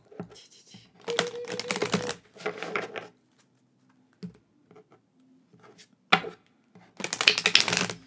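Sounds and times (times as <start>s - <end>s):
deck of tarot cards shuffling: 1.0s - 2.2s, 7.0s - 8.0s
tarot card taps: 1.1s - 2.2s.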